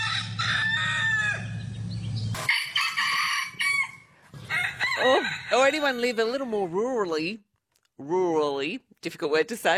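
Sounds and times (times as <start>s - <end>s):
rooster crowing: 0.0s - 1.6s, 2.4s - 7.1s
low engine-like hum: 0.0s - 2.4s
speech: 5.6s - 9.7s.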